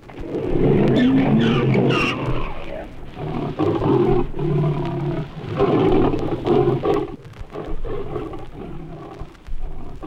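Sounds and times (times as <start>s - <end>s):
lion roaring and snarling: 0.2s - 10.0s
Grevy's zebra giving harsh braying cries: 0.4s - 10.0s.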